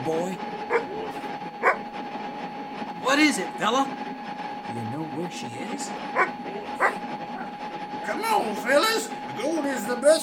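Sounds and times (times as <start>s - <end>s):
speech: 0.0s - 0.8s, 3.1s - 4.1s, 4.7s - 7.3s, 8.1s - 10.2s
steady low hum: 0.0s - 10.2s
single sharp dog bark: 0.7s - 0.9s, 1.6s - 1.8s, 6.2s - 7.6s.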